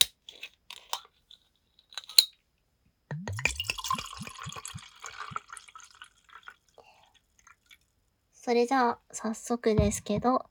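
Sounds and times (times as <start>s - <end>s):
clicks and taps of a soju bottle being opened: 2.0s - 2.3s, 3.1s - 4.9s
soju glugging from a bottle into a glass: 3.1s - 6.8s
speech: 8.5s - 10.5s.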